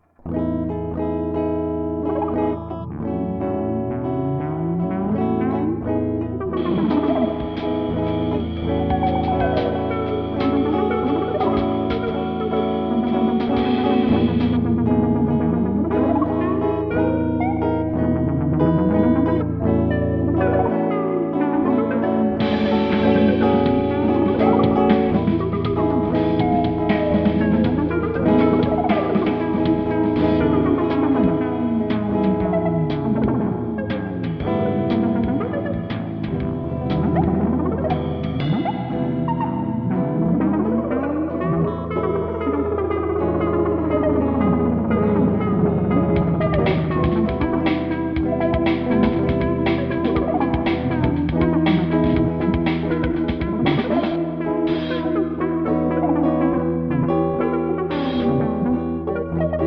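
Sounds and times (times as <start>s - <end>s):
theremin: 0.0s - 59.6s
drums: 6.4s - 17.7s, 21.7s - 41.0s, 42.6s - 56.2s.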